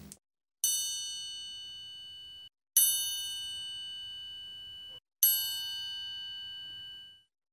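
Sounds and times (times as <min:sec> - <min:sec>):
soft bell strikes with a clear bright tone: 0:00.6 - 0:07.3.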